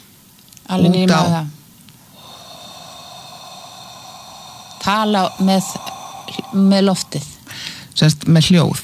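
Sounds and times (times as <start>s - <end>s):
speech: 0.7s - 1.6s, 4.9s - 7.3s, 8.0s - 8.8s
deep breath drawn in through the nose: 2.0s - 8.0s.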